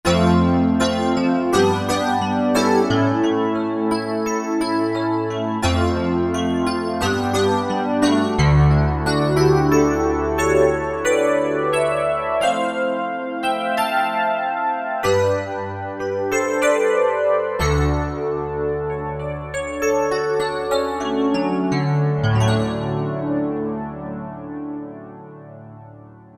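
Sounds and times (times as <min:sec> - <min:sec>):
pop Rhodes electric piano: 0:00.0 - 0:26.3.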